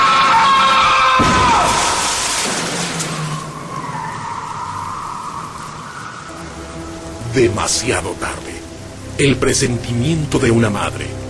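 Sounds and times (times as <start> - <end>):
speeding car tire screech while skidding: 0.0 - 6.4
speech: 7.4 - 8.5, 9.2 - 11.2.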